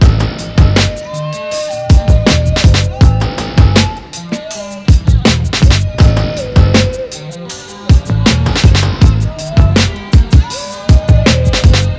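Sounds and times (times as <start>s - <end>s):
music loop: 0.0s - 11.9s.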